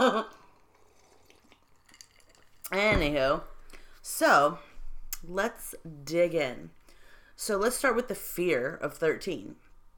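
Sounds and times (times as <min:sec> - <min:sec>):
person slurping a drink: 0:00.4 - 0:02.7
speech: 0:02.7 - 0:06.8, 0:07.4 - 0:09.6.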